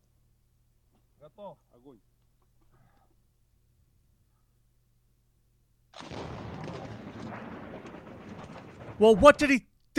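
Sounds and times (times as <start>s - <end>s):
speech: 1.2s - 2.2s, 9.0s - 9.9s
very big gun firing at a highly explosive target: 6.0s - 9.6s.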